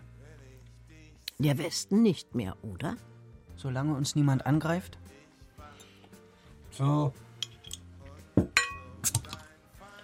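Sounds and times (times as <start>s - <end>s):
speech: 1.4s - 5.2s, 6.8s - 7.2s
glasses clinking in a toast: 7.4s - 9.4s.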